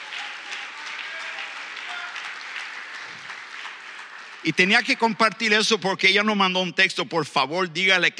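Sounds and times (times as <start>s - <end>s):
audience applauding loudly: 0.0s - 6.4s
speech: 4.4s - 8.1s.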